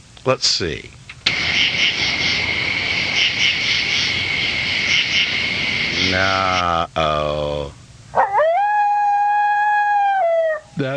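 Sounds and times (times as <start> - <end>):
speech: 0.2 - 1.0, 6.1 - 7.4, 10.8 - 10.9
coyote howling: 1.3 - 6.6, 8.1 - 10.8.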